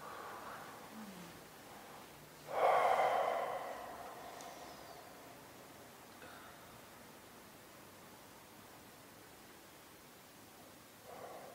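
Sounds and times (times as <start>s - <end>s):
slow deep breath close to the microphone: 0.0s - 5.3s, 11.1s - 11.5s.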